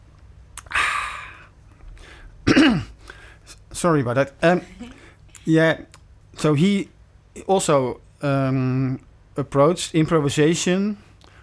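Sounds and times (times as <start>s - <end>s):
breathy slurp of person sipping water: 0.6s - 2.0s
short voiced throat clearing: 2.4s - 3.0s
speech: 3.8s - 11.1s.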